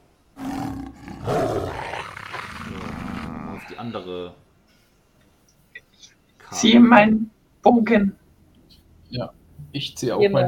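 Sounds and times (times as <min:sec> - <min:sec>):
pack of wolves howling and growling: 0:00.4 - 0:03.8
speech: 0:03.8 - 0:04.5, 0:06.5 - 0:08.2, 0:09.1 - 0:10.4.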